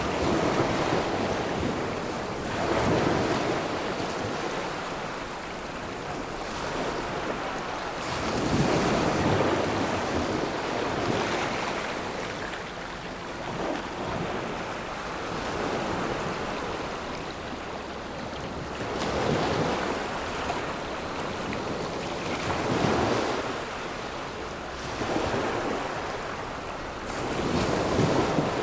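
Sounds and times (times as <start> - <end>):
waves: 0.0 - 28.6.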